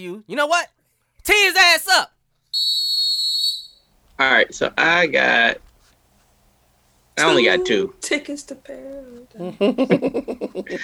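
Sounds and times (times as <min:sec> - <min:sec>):
speech: 0:00.0 - 0:02.8, 0:04.2 - 0:05.6, 0:07.2 - 0:10.8
sharp shrill whistle blast: 0:02.5 - 0:03.9
laughter: 0:07.4 - 0:10.8.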